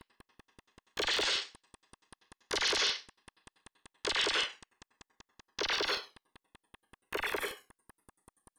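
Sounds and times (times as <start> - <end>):
moving clapping noise: 0.8 - 7.3.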